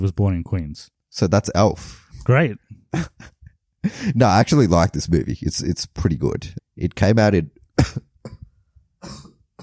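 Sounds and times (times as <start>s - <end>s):
speech: 0.0s - 8.4s, 9.0s - 9.3s
coughing from spicy cooking fumes: 7.8s - 9.6s.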